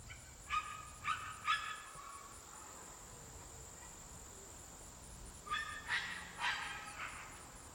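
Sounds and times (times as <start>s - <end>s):
high-pitched insect drone outdoors: 0.0s - 7.7s
dogs barking on a rural country road: 0.5s - 2.8s, 5.5s - 7.4s.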